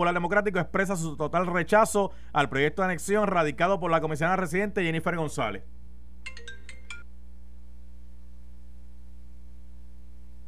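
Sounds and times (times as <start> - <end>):
speech: 0.0 - 6.4
steady low electrical hum: 0.0 - 10.4
cell phone ringtone of bright electronic notes: 6.2 - 7.1.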